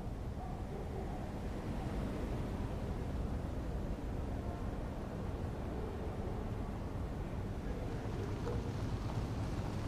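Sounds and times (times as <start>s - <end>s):
low traffic rumble on a quiet residential street at night: 0.1s - 9.8s
passing vehicle: 7.5s - 9.8s.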